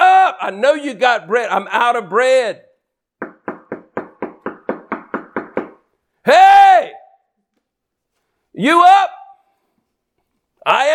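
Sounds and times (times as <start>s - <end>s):
speech: 0.5s - 2.7s, 6.3s - 7.0s, 8.6s - 9.2s, 10.6s - 10.9s
solid knocks on a door: 3.2s - 5.8s.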